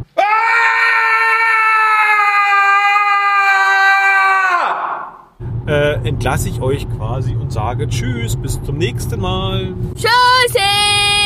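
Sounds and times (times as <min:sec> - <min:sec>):
person screaming: 0:00.2 - 0:05.2
speech: 0:06.1 - 0:11.0.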